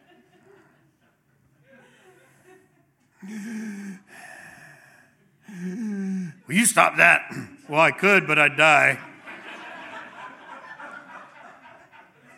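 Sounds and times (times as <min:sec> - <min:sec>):
laughter: 0:00.0 - 0:03.6, 0:06.4 - 0:12.3
exaggerated loud breathing: 0:03.2 - 0:06.5
speech: 0:06.5 - 0:09.1.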